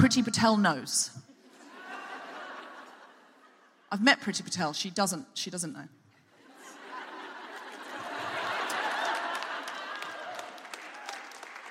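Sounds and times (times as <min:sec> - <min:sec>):
speech: 0:00.0 - 0:01.2, 0:03.9 - 0:06.0
laughter: 0:01.3 - 0:03.9, 0:06.3 - 0:11.0
audience clapping: 0:07.6 - 0:11.6.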